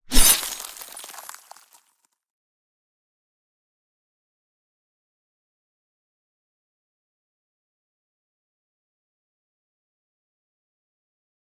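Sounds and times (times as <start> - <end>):
knife on icicle: 0.1 - 1.7.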